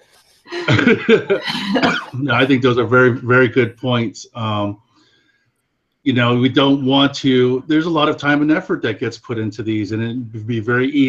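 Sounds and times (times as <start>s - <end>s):
rough throaty coughing: 0.5s - 3.6s
laughter: 0.5s - 4.7s
speech: 0.7s - 4.8s, 6.0s - 11.0s.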